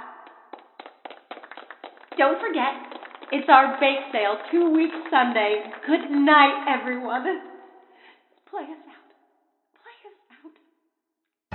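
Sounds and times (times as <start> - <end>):
audience applause for the cast at an annual show: 0.0 - 6.6
speech: 2.2 - 7.5, 8.5 - 8.9.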